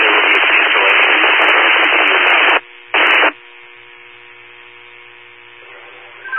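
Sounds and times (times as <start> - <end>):
radio static over transmission: 0.0 - 3.4, 5.1 - 6.3
faint buzzing hum: 0.1 - 6.3.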